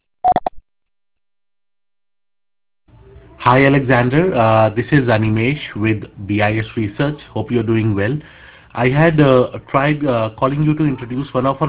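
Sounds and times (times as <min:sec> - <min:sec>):
voicemail beep tones on a mobile mailbox: 0:00.2 - 0:00.5
speech: 0:03.4 - 0:11.6.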